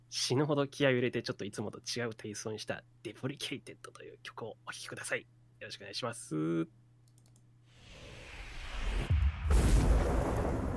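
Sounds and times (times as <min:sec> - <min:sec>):
speech: 0:00.1 - 0:06.8
deep rumbling explosion with booming blast and sustained roar: 0:07.8 - 0:10.7.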